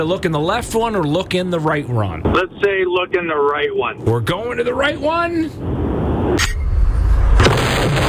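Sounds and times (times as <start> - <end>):
speech: 0.0 - 5.8
hand grenade explosion sound effect: 6.7 - 8.0.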